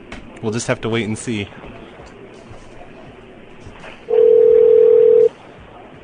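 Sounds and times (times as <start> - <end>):
speech: 0.4 - 2.2
ringing tone of a call placed from a computer to a cell phone: 4.1 - 5.3.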